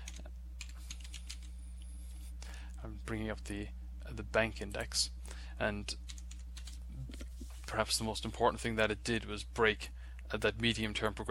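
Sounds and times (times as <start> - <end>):
typing on a computer keyboard: 0.0 - 1.5, 6.1 - 6.8
speech: 2.8 - 6.1, 7.7 - 11.2.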